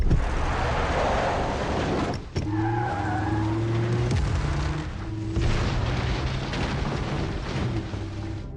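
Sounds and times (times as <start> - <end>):
car skidding: 0.2 - 8.4.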